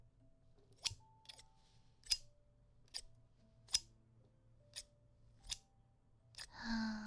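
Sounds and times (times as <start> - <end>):
scissors cutting through a piece of clothing: 0.8 - 2.3, 2.9 - 3.1, 3.7 - 3.9, 4.7 - 5.7.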